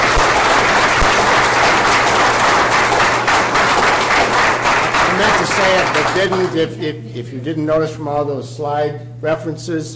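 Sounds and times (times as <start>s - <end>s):
sizable crowd applauding a speaker at end of talk: 0.0s - 6.6s
speech: 5.6s - 9.9s.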